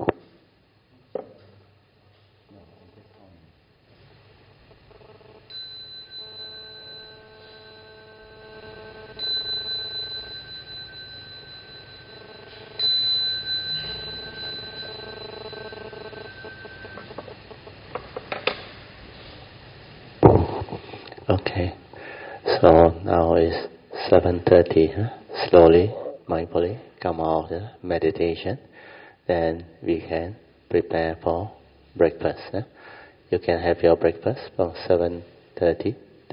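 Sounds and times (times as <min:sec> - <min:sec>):
faint room noise: 0:00.0 - 0:36.3
bell ringing: 0:05.5 - 0:17.9
speech: 0:24.5 - 0:28.7, 0:29.3 - 0:36.3.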